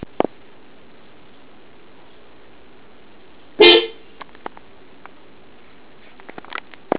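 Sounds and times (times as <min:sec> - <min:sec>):
horn played normally: 0:03.6 - 0:04.0.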